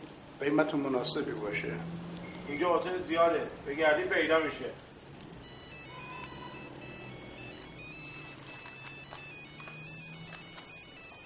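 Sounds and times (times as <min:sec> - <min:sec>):
noisy busy background: 0:00.0 - 0:11.2
speech: 0:00.4 - 0:04.8
mobile phone ringtone with looping electronic melody: 0:05.4 - 0:11.2.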